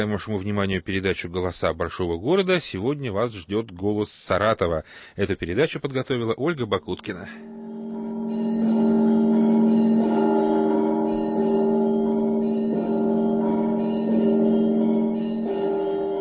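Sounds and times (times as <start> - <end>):
speech: 0.0 - 7.6
church bells ringing in a steady peal: 7.4 - 16.1.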